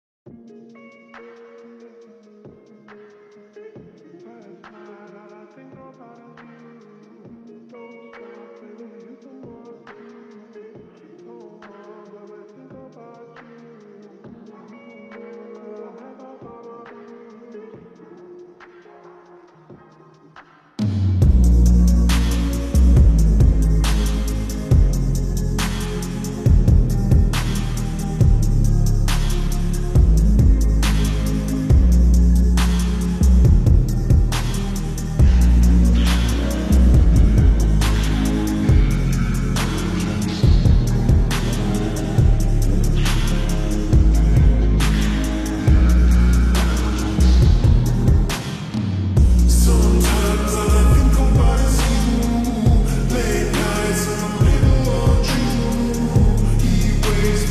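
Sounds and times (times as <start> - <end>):
slowed music with reverb: 0.3 - 57.5.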